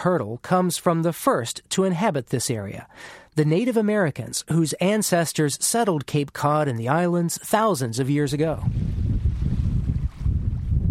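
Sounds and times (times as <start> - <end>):
speech: 0.0 - 9.0
strong gusting wind over the Sound at Martha's Vineyard: 8.5 - 10.8
rough churning water of the Sound at Martha's Vineyard: 8.7 - 10.8.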